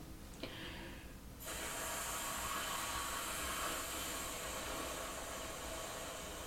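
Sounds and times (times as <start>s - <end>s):
person taking a breath: 0.4s - 1.2s
person imitating wind with a long breathy exhale: 0.5s - 6.0s.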